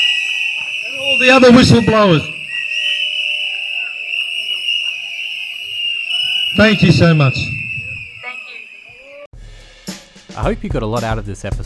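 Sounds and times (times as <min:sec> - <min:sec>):
crowd blowing whistles: 0:00.0 - 0:09.3
speech: 0:01.1 - 0:02.3, 0:06.6 - 0:07.6, 0:10.4 - 0:11.6.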